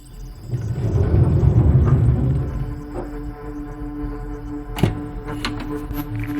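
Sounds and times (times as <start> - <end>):
low rumbling and shuffling: 0.0 - 6.3
thump and knocks as a woman loads something into a car: 4.8 - 6.1.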